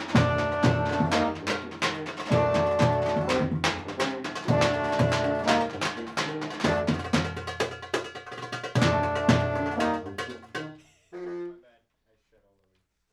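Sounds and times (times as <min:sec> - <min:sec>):
clarinet through a microphone: 0:00.1 - 0:07.3, 0:08.7 - 0:11.8.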